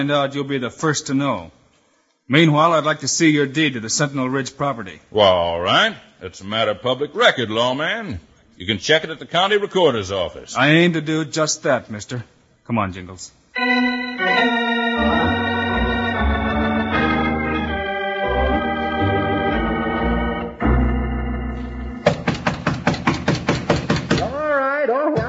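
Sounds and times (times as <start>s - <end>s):
speech: 0.0s - 1.6s, 2.3s - 14.6s
music: 13.6s - 22.2s
loud rapid knocking on a door fastened with a chain: 22.0s - 24.4s.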